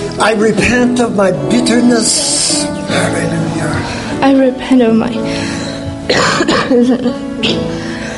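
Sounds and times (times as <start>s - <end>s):
speech: 0.2s - 7.9s
person coughing: 6.1s - 7.7s.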